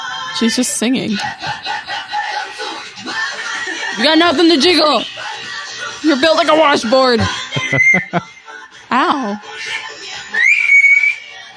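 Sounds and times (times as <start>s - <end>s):
speech: 0.4s - 1.9s, 4.0s - 5.2s, 6.0s - 8.3s, 8.9s - 9.8s
laughter: 0.9s - 8.5s
woman whistling: 7.6s - 8.2s, 10.3s - 11.4s.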